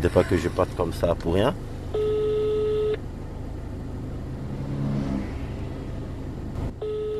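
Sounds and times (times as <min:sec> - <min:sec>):
speech: 0:00.0 - 0:01.8
telephone call tone while dialing out: 0:02.0 - 0:03.0, 0:06.8 - 0:07.1
car engine running and revving: 0:03.6 - 0:07.0.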